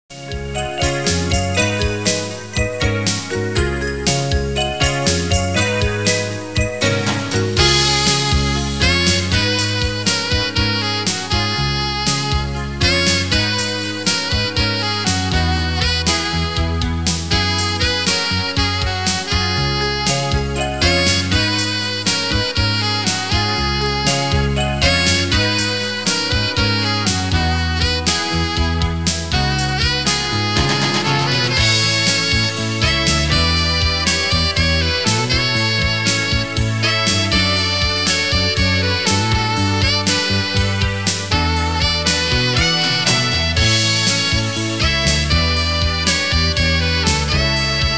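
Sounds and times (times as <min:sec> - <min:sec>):
saxophone: 0:00.1 - 0:47.9.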